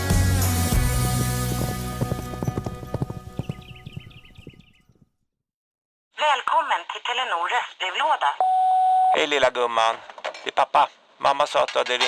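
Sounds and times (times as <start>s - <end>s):
horse hooves clip-clopping: 0.1s - 5.0s
speech: 7.0s - 8.6s, 9.1s - 12.0s.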